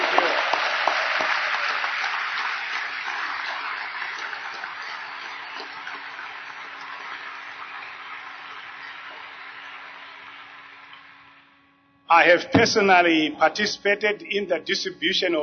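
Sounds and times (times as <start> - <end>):
crowd clapping hands in the African way: 0.0 - 11.6
speech: 12.1 - 15.4.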